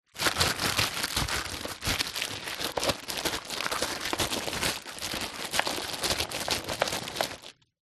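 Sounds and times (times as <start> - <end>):
plastic-wrapped packet being handled: 0.0 - 7.6.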